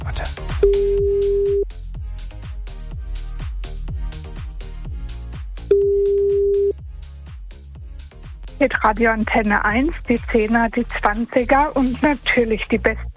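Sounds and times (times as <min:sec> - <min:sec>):
loud punchy rhythmic music bed: 0:00.0 - 0:13.1
telephone ringback tone of a call being placed: 0:00.6 - 0:01.6, 0:05.7 - 0:06.8
speech: 0:08.6 - 0:13.1.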